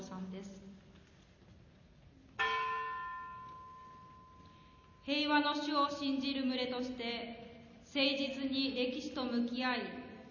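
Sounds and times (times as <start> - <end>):
bell being struck: 2.4 - 5.0
speech: 5.0 - 10.0.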